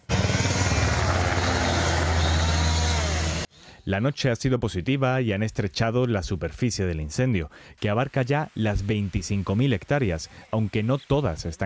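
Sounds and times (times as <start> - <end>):
firefighting aircraft engine drone overhead: 0.0 - 3.5
speech: 3.9 - 11.6.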